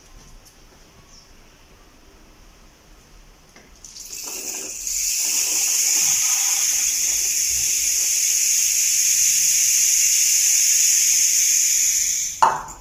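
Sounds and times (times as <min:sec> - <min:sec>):
homemade painted rain stick filled with rice pouring: 0:03.8 - 0:12.7.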